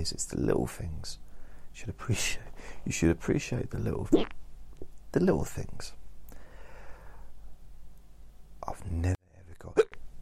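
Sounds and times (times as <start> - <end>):
speech: 0.0 - 4.4, 5.1 - 6.0, 8.7 - 9.8
hiccup: 4.1 - 4.4, 9.8 - 10.0.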